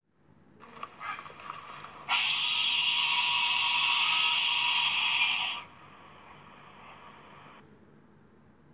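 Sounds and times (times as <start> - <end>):
wombat screams: 0.7 - 5.7.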